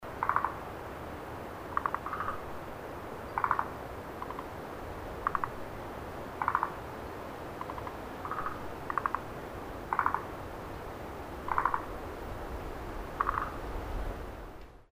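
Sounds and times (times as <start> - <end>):
steady background noise: 0.0 - 14.9
frog calling at Lake Tazawa: 0.1 - 0.7, 1.7 - 2.5, 3.3 - 4.6, 5.2 - 5.6, 6.4 - 6.9, 7.6 - 9.3, 9.9 - 10.4, 11.4 - 12.0, 13.2 - 13.6.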